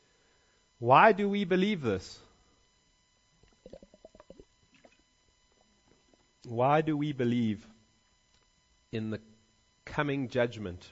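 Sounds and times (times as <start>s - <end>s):
faint hum: 0.0s - 10.9s
speech: 0.8s - 2.2s, 6.5s - 7.7s, 8.9s - 9.3s, 9.9s - 10.9s
quiet liquid sounds: 2.6s - 6.5s
drinking water glugging: 3.4s - 6.2s.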